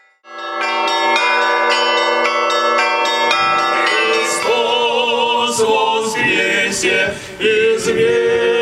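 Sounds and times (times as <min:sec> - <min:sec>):
church bells ringing in a festive peal: 0:00.0 - 0:06.7
speech: 0:06.8 - 0:08.5.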